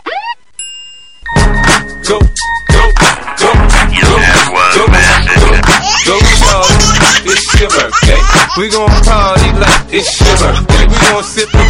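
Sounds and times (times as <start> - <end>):
message tone mixture: 0.6 - 3.2
laughter: 4.0 - 11.6.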